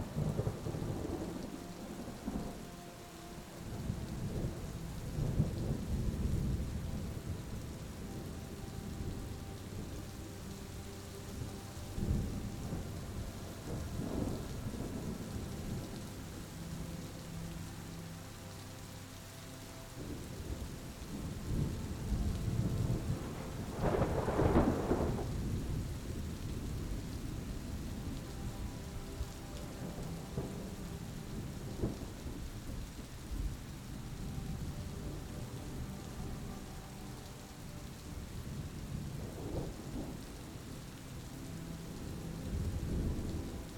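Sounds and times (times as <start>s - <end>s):
low thunder rumbling: 0.0s - 18.5s, 19.7s - 43.7s
rain falling steadily: 0.0s - 43.7s
soft sustained melodic tones: 0.0s - 43.7s
sharp thunder crack: 23.0s - 25.4s.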